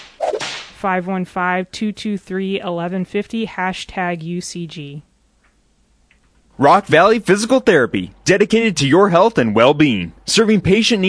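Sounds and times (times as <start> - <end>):
whip swish and crack: 0.0 - 0.8
speech: 0.8 - 5.1, 6.6 - 11.0.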